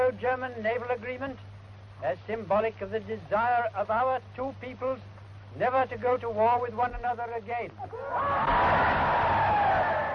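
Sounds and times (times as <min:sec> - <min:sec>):
speech: 0:00.1 - 0:10.0
large jubilant crowd cheering and shouting: 0:07.9 - 0:10.1.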